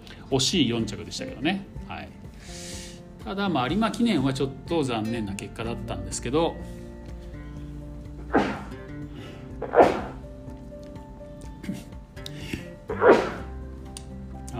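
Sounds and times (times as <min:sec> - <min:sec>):
speech: 0:00.3 - 0:06.8
person sneezing: 0:08.3 - 0:08.8, 0:09.6 - 0:10.2, 0:12.9 - 0:13.5.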